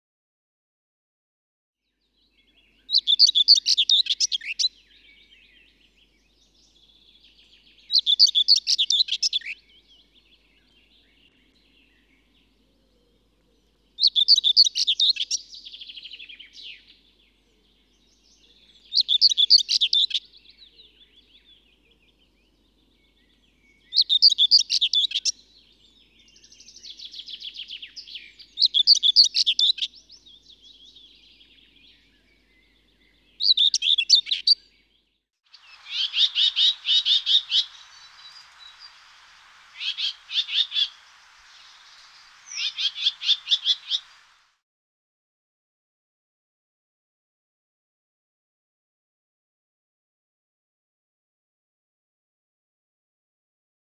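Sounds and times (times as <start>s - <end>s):
common whitethroat singing: 2.1s - 44.4s.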